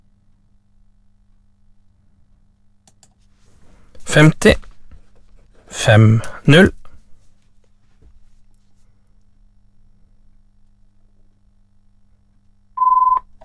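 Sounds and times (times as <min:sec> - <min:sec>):
faint low hum: 0:00.0 - 0:13.4
speech: 0:04.1 - 0:04.6, 0:05.8 - 0:06.8
telephone ringing with electronic tone: 0:12.8 - 0:13.2.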